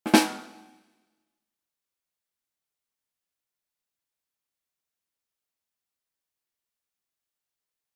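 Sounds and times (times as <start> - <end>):
drum rimshot: 0.0 - 0.8.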